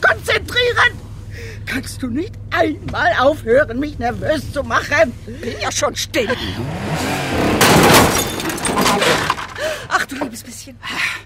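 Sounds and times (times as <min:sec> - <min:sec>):
car reversing into another car: 0:00.0 - 0:10.1
speech: 0:01.7 - 0:08.3, 0:10.1 - 0:11.2
scraping clatter from a car collision: 0:07.0 - 0:10.4
rattling debris from a car collision: 0:07.0 - 0:10.5.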